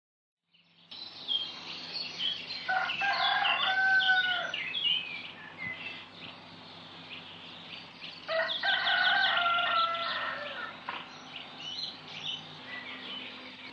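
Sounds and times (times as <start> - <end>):
rooster crowing: 2.6 - 4.6, 8.3 - 10.8.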